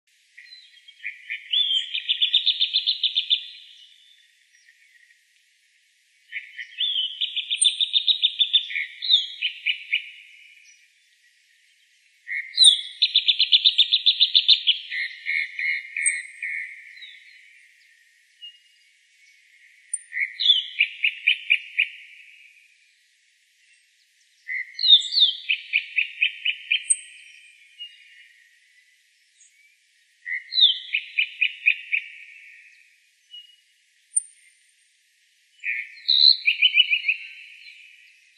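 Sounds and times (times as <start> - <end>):
calandra lark voice: 0.4 - 5.0, 6.3 - 10.8, 12.3 - 17.8, 19.4 - 22.4, 24.4 - 28.4, 30.3 - 33.6, 35.6 - 38.3.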